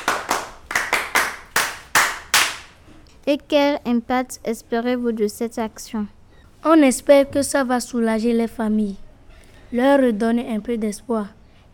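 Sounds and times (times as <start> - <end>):
rhythmic hand clapping cheer: 0.0 - 2.8
speech: 3.2 - 9.0, 9.7 - 11.4.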